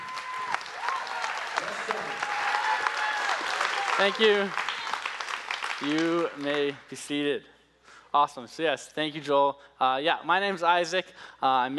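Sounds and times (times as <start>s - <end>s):
church service audience cheering: 0.0s - 6.3s
church service audience clapping for a preacher: 0.0s - 7.1s
speech: 4.0s - 4.6s, 5.8s - 7.5s, 8.1s - 11.7s.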